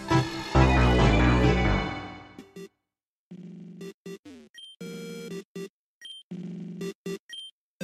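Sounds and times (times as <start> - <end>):
video game rival character theme music: 0.0 - 2.6.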